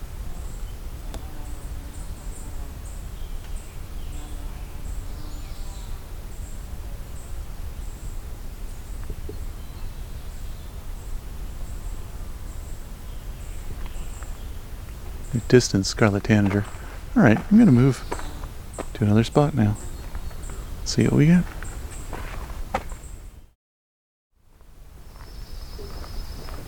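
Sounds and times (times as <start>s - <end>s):
steady outdoor hiss: 0.0s - 23.4s
magnolia warbler singing: 0.4s - 22.2s, 25.1s - 26.6s
regular high insect-like chirping: 0.4s - 22.2s, 25.0s - 26.6s
speech: 15.3s - 18.2s, 19.0s - 19.9s, 20.9s - 21.5s.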